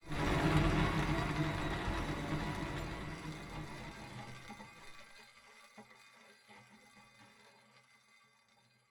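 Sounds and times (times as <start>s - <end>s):
big wheel spin start: 0.0s - 5.0s.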